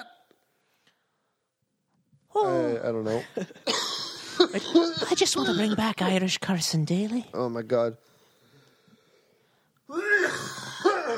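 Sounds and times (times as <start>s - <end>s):
speech: 2.4s - 3.8s, 4.4s - 8.1s
harsh wheezy coughing fit: 3.6s - 5.8s, 10.2s - 11.1s.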